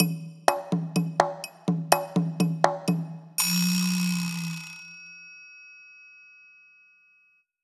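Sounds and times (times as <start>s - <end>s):
congas: 0.0s - 4.8s
vibraslap: 0.0s - 5.0s
triangle: 3.4s - 7.5s.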